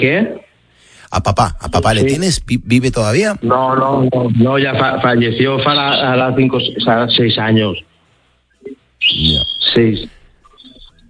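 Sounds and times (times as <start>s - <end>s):
speech: 0.0s - 0.5s, 1.1s - 7.9s, 9.1s - 10.2s
small birds chirping: 10.4s - 11.0s.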